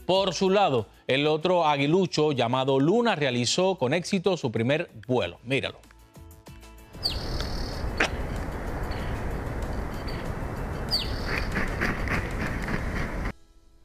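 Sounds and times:
speech: 0.1s - 5.9s
eaglet and eagles piping calls at a nest: 7.0s - 13.3s
wind noise: 7.0s - 13.4s.

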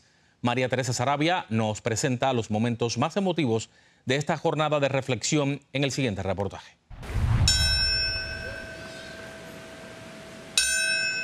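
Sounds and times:
speech: 0.4s - 6.8s
memorial bell tolling: 7.1s - 11.2s.

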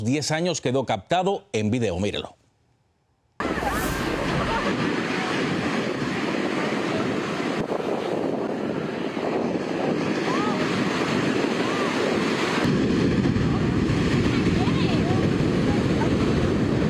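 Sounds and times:
speech: 0.0s - 2.4s
strong ocean surf roaring at a beach in Santa Cruz: 3.4s - 16.8s
wind buffeting the microphone: 3.4s - 16.8s.

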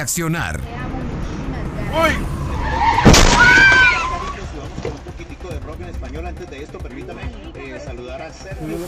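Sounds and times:
speech: 0.0s - 0.8s, 1.9s - 2.8s, 5.8s - 8.8s
busy traffic noise: 0.0s - 8.8s
car skidding with screeching tones: 1.8s - 5.2s
car crashing into motorcycle: 2.8s - 5.1s.

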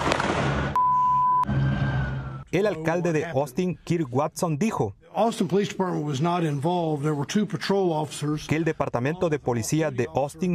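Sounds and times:
gunshot cracks from a shooting recorded on video: 0.0s - 0.8s
steady high electronic beep: 0.8s - 2.5s
speech: 2.5s - 10.5s.

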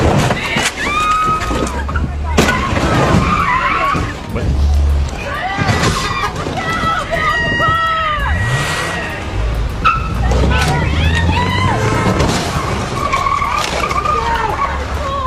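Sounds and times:
car engine noise: 0.0s - 15.2s
indistinct voices murmuring: 0.0s - 15.2s
stolen car tires screeching while maneuvering with locked steering wheel: 0.0s - 15.2s.

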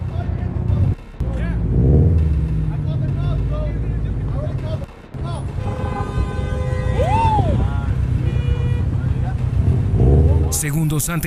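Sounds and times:
car engines running in El Paso Texas: 0.0s - 11.2s
road traffic rumble in El Paso Texas: 0.0s - 11.2s
indistinct voices of drivers shouting in traffic: 5.2s - 9.4s
horn-like toot: 5.2s - 10.6s
speech: 10.8s - 11.2s.

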